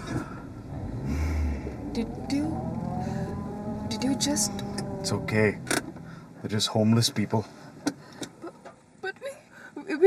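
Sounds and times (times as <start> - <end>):
new car engine rumbling and revving while driving: 0.0 - 7.0
speech: 2.0 - 2.5, 4.0 - 5.8, 6.4 - 7.6.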